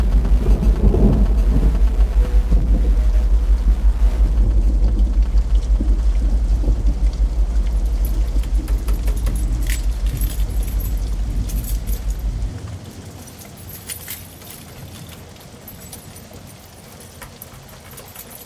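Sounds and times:
deep rolling thunder rumble: 0.0s - 15.2s
heavy rain pouring down: 0.0s - 18.4s
keys jingling and rattling: 7.8s - 18.4s.

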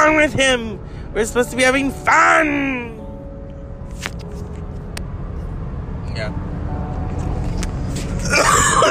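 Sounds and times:
low engine rumble: 0.0s - 8.8s
speech: 0.2s - 3.0s, 6.2s - 6.5s
person coughing: 8.2s - 8.8s.

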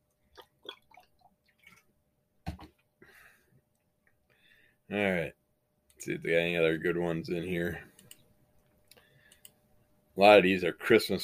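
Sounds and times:
person sipping water: 0.4s - 1.9s
speech: 4.9s - 5.4s, 6.0s - 7.9s, 10.2s - 11.2s.

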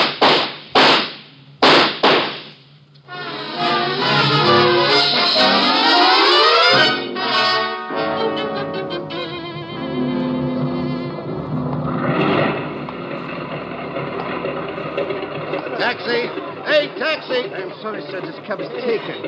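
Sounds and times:
gunshots in a shootout near a car: 0.0s - 2.6s
sustained loud tonal sound: 3.0s - 19.2s.

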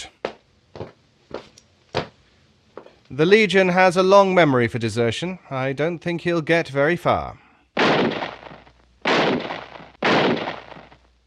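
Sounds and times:
speech: 3.1s - 7.4s
gunshots: 7.8s - 11.1s.

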